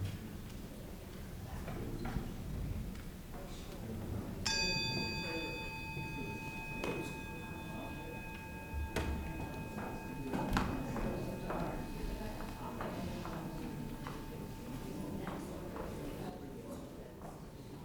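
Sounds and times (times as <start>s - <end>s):
quiet noise: 0.0s - 17.7s
single bell struck at a group gathering: 4.5s - 16.3s.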